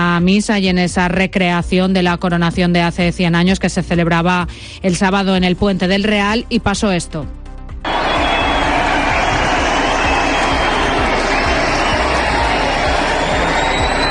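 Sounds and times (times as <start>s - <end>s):
speech: 0.2s - 7.4s
large crowd shouting and jeering at a celebration of the Virgin: 7.9s - 14.0s.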